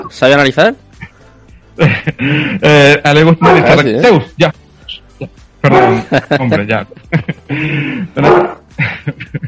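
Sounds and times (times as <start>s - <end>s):
speech: 0.1s - 0.8s, 1.8s - 4.6s, 5.2s - 9.4s
laughter: 1.8s - 2.4s, 5.2s - 9.4s
dog barking: 3.4s - 3.8s, 5.7s - 6.2s, 8.2s - 8.6s.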